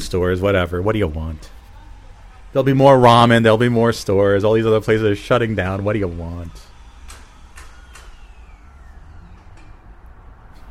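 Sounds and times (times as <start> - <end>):
faint falling whine: 0.0 - 10.6
speech: 0.1 - 1.6, 2.5 - 6.7
drill grinding with a heavy low rumble: 0.1 - 10.6
sharp rhythmic knocks: 7.0 - 8.2.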